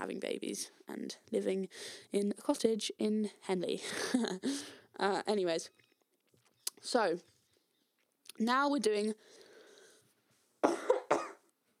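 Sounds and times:
speech: 0.0s - 5.8s, 6.8s - 7.3s, 8.3s - 9.4s
raspy chesty phlegmy coughs: 10.6s - 11.4s.

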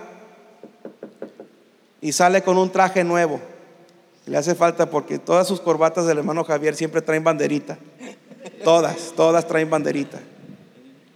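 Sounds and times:
knocking on a door: 0.6s - 1.6s
speech: 2.0s - 3.5s, 4.3s - 7.9s, 8.6s - 10.3s.

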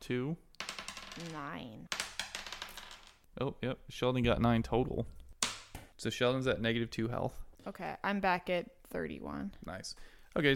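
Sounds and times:
speech: 0.1s - 0.5s, 1.2s - 2.0s, 3.4s - 5.2s, 6.0s - 10.5s
dice clattering across a hard table surface: 0.6s - 3.2s.

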